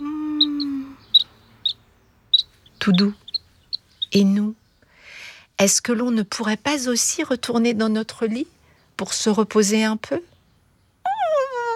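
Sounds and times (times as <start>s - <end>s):
baby birds chirping in a nest: 0.0s - 4.6s
speech: 2.8s - 3.2s, 4.1s - 4.6s, 5.6s - 10.3s.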